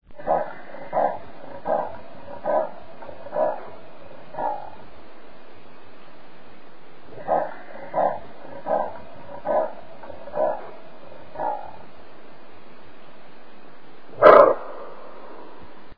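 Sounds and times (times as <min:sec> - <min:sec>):
leopard Panthera pardus: 0:00.0 - 0:05.6, 0:07.0 - 0:12.5, 0:13.6 - 0:15.9.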